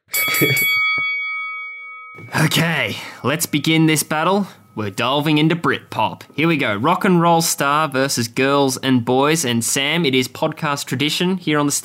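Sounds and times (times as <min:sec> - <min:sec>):
bell struck and ringing: 0:00.0 - 0:08.0
speech: 0:00.4 - 0:00.8, 0:02.4 - 0:11.8.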